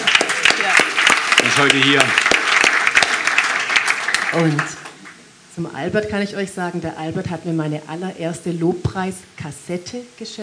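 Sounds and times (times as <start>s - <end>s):
audience applause: 0.0s - 5.2s
speech: 1.5s - 2.3s, 4.3s - 4.8s, 5.6s - 10.4s.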